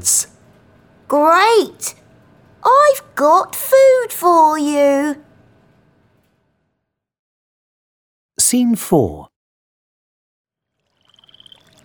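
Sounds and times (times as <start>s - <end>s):
speech: 0.0s - 0.3s, 1.1s - 2.0s, 2.6s - 5.3s, 8.4s - 9.3s
frogs croaking in a chirring chorus: 10.8s - 11.8s.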